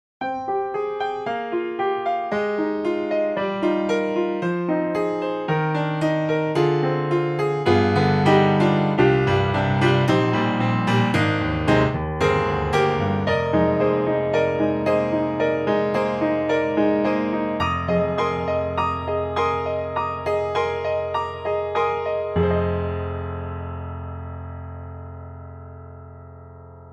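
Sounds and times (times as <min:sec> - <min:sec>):
Yamaha piano: 0:00.2 - 0:26.9.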